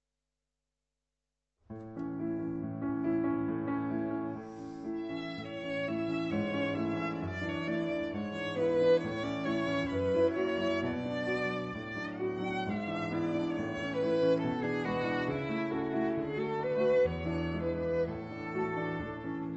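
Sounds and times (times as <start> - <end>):
piano playing romance: 1.7 - 19.5
violin playing romance: 4.4 - 19.5.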